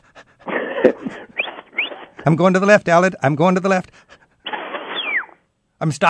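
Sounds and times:
person imitating a panting sheepdog: 0:00.0 - 0:01.4
speech: 0:02.3 - 0:04.2, 0:05.8 - 0:06.0.

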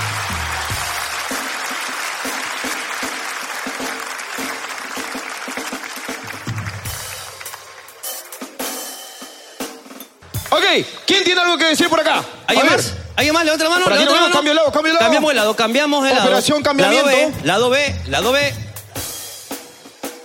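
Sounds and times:
audience applause: 0:00.0 - 0:08.9, 0:10.2 - 0:11.8
speech: 0:10.8 - 0:18.6.

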